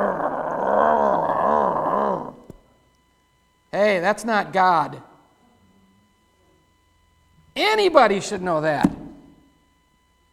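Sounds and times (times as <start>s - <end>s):
snarling growl: 0.0s - 2.5s
speech: 4.0s - 5.1s, 7.7s - 9.0s.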